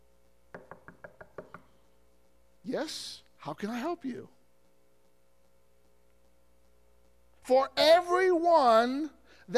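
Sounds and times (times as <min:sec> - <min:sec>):
knocking on a wooden door: 0:00.5 - 0:01.6
speech: 0:02.6 - 0:04.4, 0:07.5 - 0:09.5.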